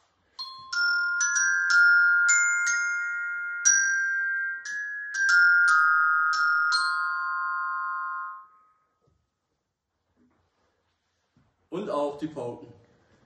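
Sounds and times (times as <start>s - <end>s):
glockenspiel playing a slow bright melody: 0.1s - 9.0s
speech: 11.8s - 12.8s.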